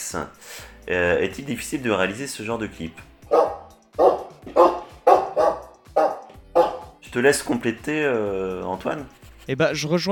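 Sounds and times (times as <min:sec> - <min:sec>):
speech: 0:00.1 - 0:03.6, 0:07.2 - 0:10.1
German shepherd barking loud and deep: 0:03.3 - 0:07.0.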